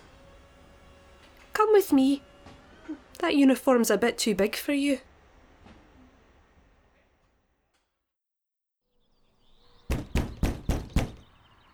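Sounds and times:
speech: 0:01.6 - 0:02.3, 0:02.9 - 0:05.1
firm loud knocks on a door: 0:09.9 - 0:11.2.

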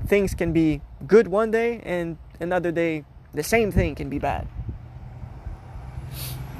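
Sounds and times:
heavy truck carrying wooden pallets rumbling: 0:00.0 - 0:06.5
speech: 0:00.1 - 0:04.6
air brake hiss: 0:06.1 - 0:06.5.

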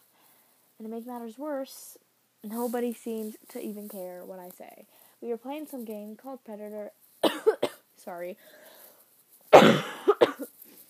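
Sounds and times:
speech: 0:00.8 - 0:08.8
person coughing harshly: 0:07.2 - 0:07.8, 0:09.5 - 0:10.5.

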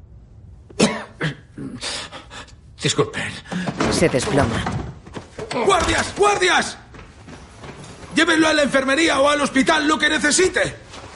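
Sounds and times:
man retching: 0:00.7 - 0:02.0
man vomiting on the roof of a building: 0:00.8 - 0:02.1
speech: 0:02.8 - 0:04.8, 0:05.6 - 0:06.8, 0:08.2 - 0:10.8.

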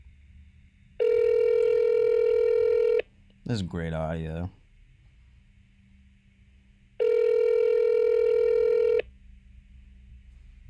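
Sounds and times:
phone ringback tone: 0:01.0 - 0:03.0, 0:07.0 - 0:09.0
speech: 0:03.5 - 0:04.6.

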